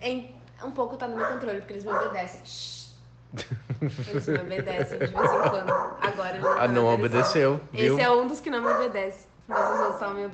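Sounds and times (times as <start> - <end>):
speech: 0.0 - 10.3
dogs barking: 1.0 - 2.4, 4.6 - 7.7, 8.4 - 10.3
laughter: 3.4 - 7.3.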